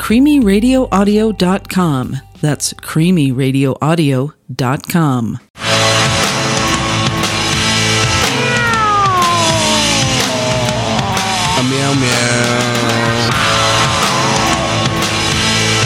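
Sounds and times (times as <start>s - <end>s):
speech: 0.1s - 5.5s
steady loud musical background: 5.6s - 15.8s
person imitating a cat meowing: 8.2s - 13.4s.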